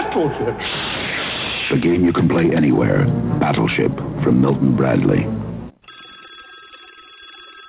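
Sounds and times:
speech: 0.1s - 0.9s, 1.7s - 5.4s
bright buzzy electronic telephone ring for an incoming caller: 5.8s - 7.6s.

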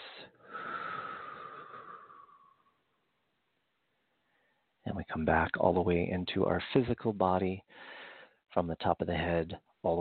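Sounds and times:
long deep breath in during a guided relaxation: 0.0s - 2.8s, 7.7s - 8.4s
speech: 4.9s - 7.9s, 8.5s - 9.9s.

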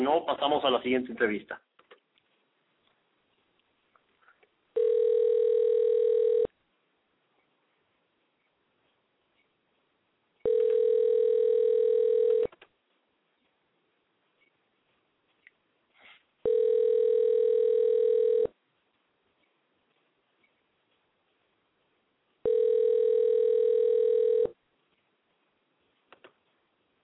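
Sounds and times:
speech: 0.0s - 1.7s
telephone ringback tones after dialing: 4.8s - 6.5s, 10.4s - 12.5s, 16.4s - 18.5s, 22.4s - 24.6s.

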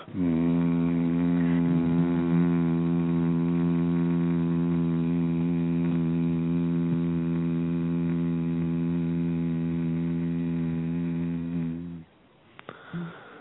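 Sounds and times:
people humming together on one sustained low note: 0.0s - 12.0s.

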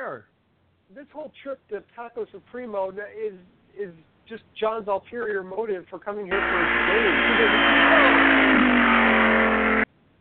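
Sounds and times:
speech: 0.9s - 9.0s
car engine revving hard as the car speeds by: 6.3s - 9.9s.

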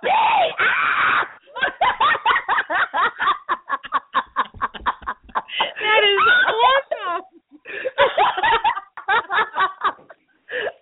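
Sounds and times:
person screaming excitedly like a fan: 0.0s - 1.4s
laughter: 1.4s - 10.8s.

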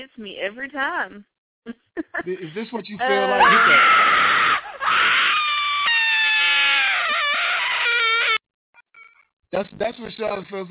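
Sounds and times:
speech: 0.0s - 4.3s, 9.5s - 10.6s
laughter: 2.0s - 5.0s
person screaming and crying: 3.0s - 8.4s.

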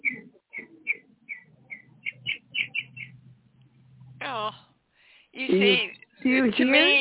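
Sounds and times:
birds chirping outside on a patio: 0.0s - 4.6s, 5.4s - 6.2s
faint low hum: 0.0s - 6.9s
speech: 5.4s - 6.9s.

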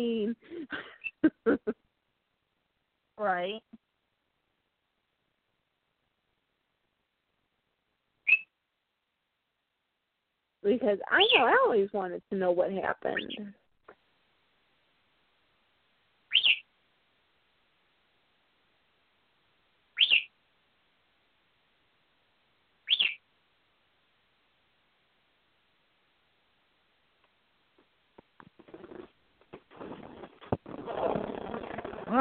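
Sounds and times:
speech: 0.0s - 0.9s, 3.3s - 3.7s, 10.7s - 13.6s
pet bird screeching: 16.3s - 16.6s, 20.0s - 20.3s, 22.9s - 23.2s
rustling and handling noise: 27.2s - 32.1s.

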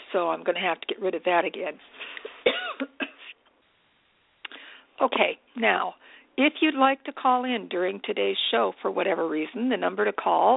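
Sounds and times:
speech: 0.1s - 2.3s, 5.0s - 10.5s
person coughing with a lingering cough aggravated by dust: 2.4s - 3.3s.

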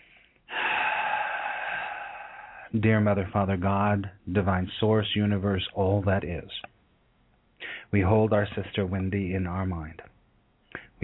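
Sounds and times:
deep breath during a guided prayer: 0.0s - 2.7s, 7.6s - 8.0s, 10.7s - 11.0s
speech: 2.7s - 6.7s, 7.9s - 10.1s.

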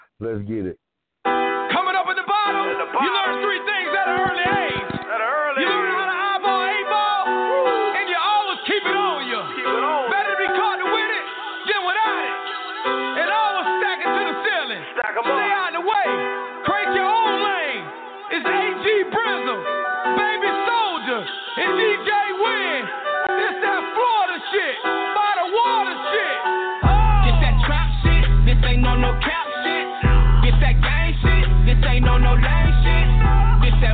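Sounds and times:
speech: 0.2s - 1.4s, 2.6s - 5.9s
rap track with chiming synth melody and rapped vocal: 1.6s - 33.9s
heavy booming bass: 26.8s - 29.2s, 30.1s - 33.9s.

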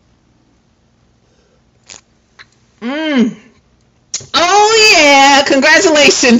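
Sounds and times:
person slurping a hot drink: 1.8s - 2.0s
speech: 2.8s - 3.4s, 4.2s - 6.3s.

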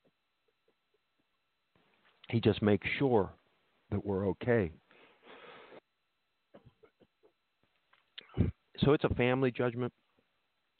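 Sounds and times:
speech: 2.3s - 4.8s, 8.8s - 10.0s
loud harsh cough: 6.5s - 7.4s, 8.2s - 8.6s
soft short throat noises: 6.5s - 7.4s, 8.2s - 8.7s.

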